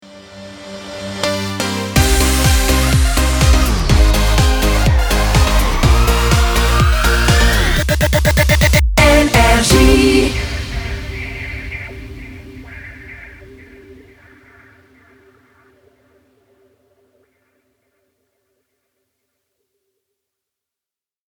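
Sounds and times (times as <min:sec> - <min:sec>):
rising jingle ramp: 0:01.4 - 0:10.8.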